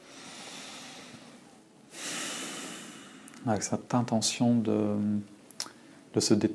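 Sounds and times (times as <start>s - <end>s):
slow deep breath during a relaxation exercise: 0.0s - 3.4s
speech: 3.4s - 5.4s, 6.1s - 6.5s.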